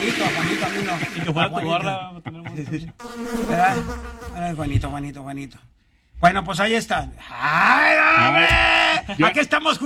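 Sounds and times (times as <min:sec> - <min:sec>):
laughter: 0:00.0 - 0:03.9, 0:08.2 - 0:09.5
speech: 0:00.2 - 0:09.8
flies buzzing: 0:03.0 - 0:04.8.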